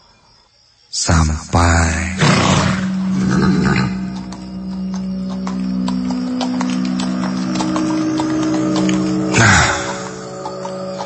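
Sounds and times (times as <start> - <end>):
speech: 0.9 - 1.6
horse neighing: 2.2 - 4.4, 9.3 - 10.4
horse hoofbeats clip-clopping: 2.2 - 11.0.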